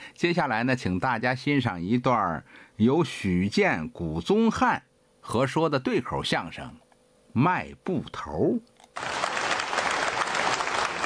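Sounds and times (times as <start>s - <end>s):
speech: 0.2s - 6.8s, 7.4s - 9.2s
audience applause at a staged crosstalk comedy show: 9.0s - 11.0s.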